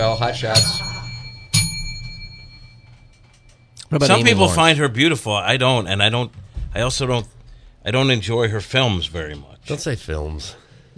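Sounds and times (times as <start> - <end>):
speech: 0.0 - 0.9, 3.9 - 10.6
bell sound effect: 0.0 - 4.4.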